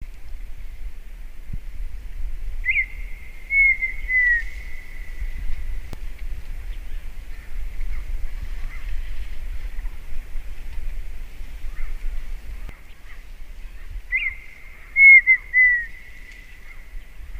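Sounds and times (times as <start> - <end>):
constant low-pitched rumbling noise: 0.0 - 17.3
partridge drawn-out whistle: 2.7 - 5.1, 14.1 - 16.0.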